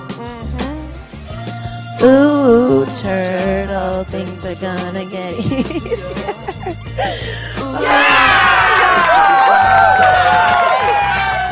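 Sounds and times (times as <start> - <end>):
speech: 2.0 - 8.1
laughter: 5.4 - 9.7
large crowd cheering and whooping: 7.6 - 11.4.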